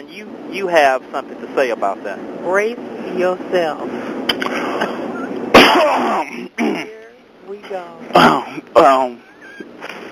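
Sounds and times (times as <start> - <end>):
speech: 0.1 - 4.7, 7.6 - 9.3
person clearing throat loudly: 4.8 - 7.0, 8.1 - 8.6
strained voiced grunts: 5.6 - 6.9, 8.1 - 8.6.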